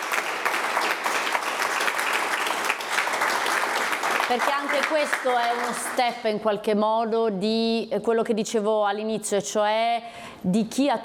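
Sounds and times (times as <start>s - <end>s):
audience applause: 0.0s - 6.1s
speech: 4.3s - 11.0s.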